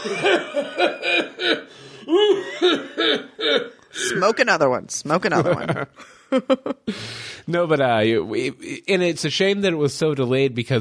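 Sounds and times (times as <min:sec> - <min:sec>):
laughter: 0:00.0 - 0:03.1, 0:05.1 - 0:07.0
speech: 0:00.0 - 0:03.2, 0:04.2 - 0:10.7
loud harsh coughs: 0:00.0 - 0:04.4.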